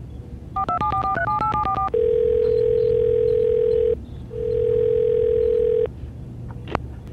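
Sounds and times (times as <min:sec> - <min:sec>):
faint low hum: 0:00.0 - 0:07.1
touch-tone keypad beeps: 0:00.6 - 0:05.9.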